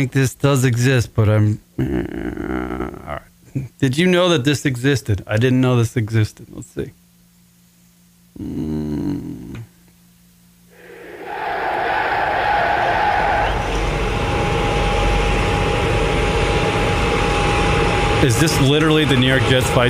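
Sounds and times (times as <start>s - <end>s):
speech: 0.0s - 7.0s, 8.4s - 9.4s, 18.2s - 19.8s
airplane taking off with engine roar and high whine: 10.8s - 18.2s.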